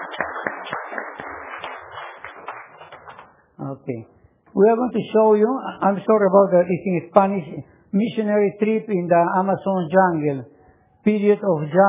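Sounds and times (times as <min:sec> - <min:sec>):
audience clapping: 0:00.0 - 0:03.4
speech: 0:03.6 - 0:11.8.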